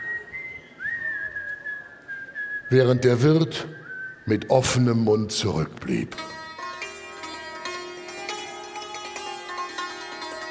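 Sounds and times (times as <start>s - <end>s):
person whistling a cheerful tune while walking away: 0.0s - 2.7s, 3.7s - 4.3s
speech: 2.7s - 6.4s.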